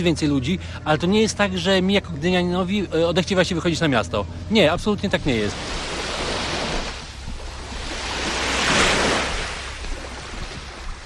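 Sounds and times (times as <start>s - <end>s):
speech: 0.0s - 5.9s
low wind rumble: 0.0s - 11.0s
Baltic Sea waves washing onto the coast near Gdynia: 2.0s - 11.0s.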